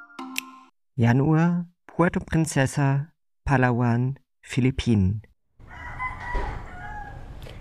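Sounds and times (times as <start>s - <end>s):
speech: 1.0s - 5.3s
rooster crowing: 5.6s - 7.5s.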